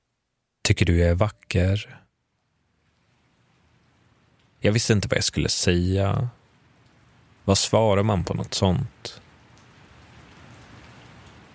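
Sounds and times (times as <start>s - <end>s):
speech: 0.7s - 2.0s, 4.6s - 6.4s, 7.5s - 9.2s
steady rain falling: 2.3s - 11.5s.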